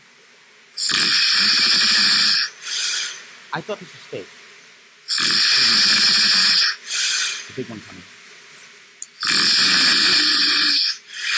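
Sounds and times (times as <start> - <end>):
pet snoring loudly with a rasping snore: 0.8 - 3.2, 5.1 - 7.5, 9.2 - 11.3
speech: 3.6 - 4.4, 7.6 - 8.2.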